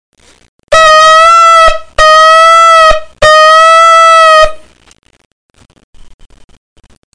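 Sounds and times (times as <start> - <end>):
shofar shevarim blasts: 0.7 - 4.7.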